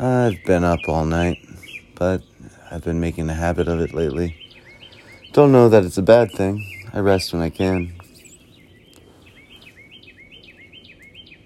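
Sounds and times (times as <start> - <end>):
bird chirping at sunrise: 0.0 - 11.4
hiss: 0.0 - 11.4
speech: 0.2 - 4.4, 5.3 - 8.0.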